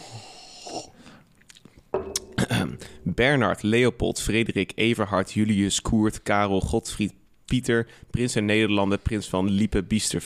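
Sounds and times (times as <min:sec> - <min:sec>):
soft slurping sip of water: 0:00.0 - 0:01.9
speech: 0:03.1 - 0:10.2.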